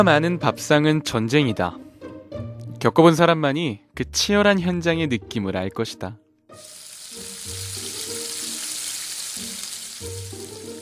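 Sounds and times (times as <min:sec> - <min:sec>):
speech: 0:00.0 - 0:01.8, 0:02.8 - 0:07.6
fish sizzling on a grill: 0:06.6 - 0:10.8.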